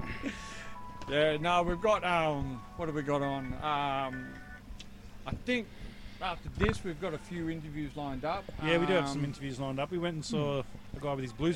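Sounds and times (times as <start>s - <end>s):
electronic mobile phone ringtone melody: 0.4s - 4.6s
speech: 1.1s - 4.4s, 5.3s - 11.5s.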